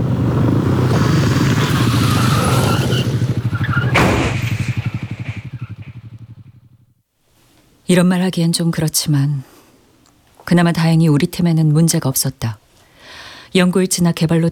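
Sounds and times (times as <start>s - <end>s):
car tires skidding in traffic accident: 0.0s - 6.3s
heavy engine roar: 0.0s - 6.5s
pulsing rumble: 0.0s - 6.9s
sharp crash-like hit in traffic accident: 0.9s - 6.2s
speech: 7.9s - 9.6s, 10.5s - 12.6s, 13.5s - 14.5s.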